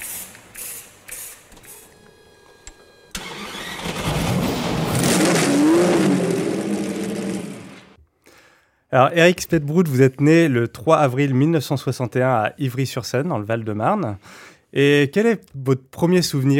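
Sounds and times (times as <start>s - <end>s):
car engine starting: 3.1s - 8.0s
speech: 8.9s - 16.5s.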